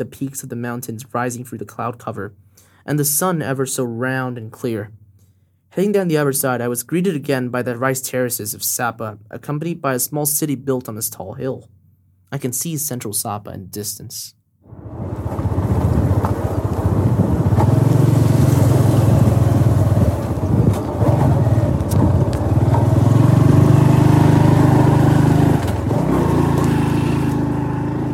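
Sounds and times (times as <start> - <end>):
speech: 0.0 - 5.0, 5.7 - 14.9
wind rushing and buffeting the microphone: 14.7 - 18.0, 19.0 - 23.0
small moped engine droning while riding along a mountain route: 14.7 - 28.1.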